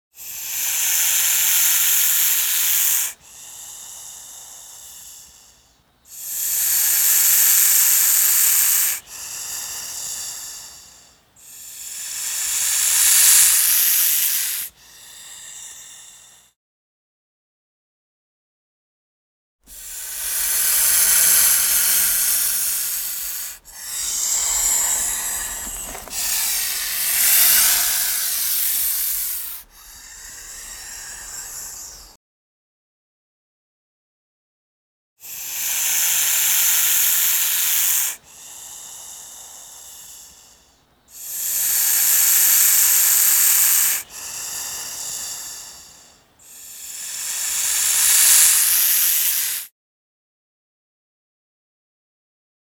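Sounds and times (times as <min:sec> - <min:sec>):
snake hissing: 0:00.2 - 0:16.5, 0:19.7 - 0:32.2, 0:35.2 - 0:49.7
inhales: 0:02.3 - 0:16.6, 0:19.7 - 0:32.2, 0:35.2 - 0:49.7.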